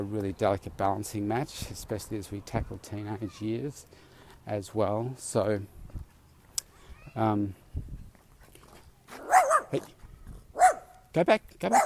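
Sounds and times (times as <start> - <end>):
speech: 0.0 - 5.8, 7.2 - 7.9, 9.7 - 10.0, 11.1 - 11.8
faint outdoor noise: 0.0 - 11.8
Jack Russell terrier barking: 9.2 - 9.8, 10.6 - 11.0, 11.7 - 11.8.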